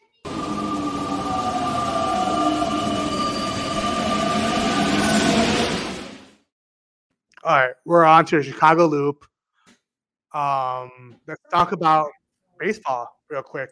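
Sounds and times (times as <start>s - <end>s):
train rumbling: 0.3s - 6.4s
speech: 7.5s - 9.3s, 10.3s - 13.7s.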